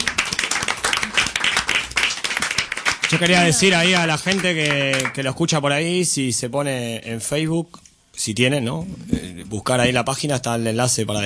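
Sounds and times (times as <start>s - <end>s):
small crowd applauding at the close of a live music session: 0.0s - 5.2s
speech: 3.1s - 11.2s.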